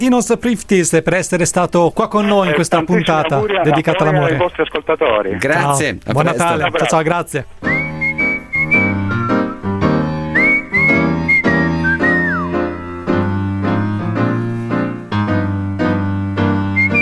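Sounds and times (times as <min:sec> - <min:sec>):
speech: 0:00.0 - 0:07.8
person whistling a bright lilting melody: 0:07.6 - 0:09.7, 0:10.3 - 0:12.7, 0:16.7 - 0:17.0
steady instrumental backing of repeated chords: 0:07.8 - 0:17.0.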